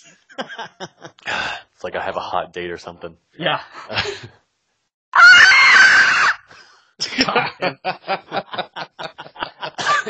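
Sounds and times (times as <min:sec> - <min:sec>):
speech: 0:00.0 - 0:04.4, 0:07.2 - 0:08.7
breathy snickering laughter: 0:00.3 - 0:01.4, 0:07.0 - 0:10.0
high-pitched vocal squeal: 0:05.2 - 0:06.5.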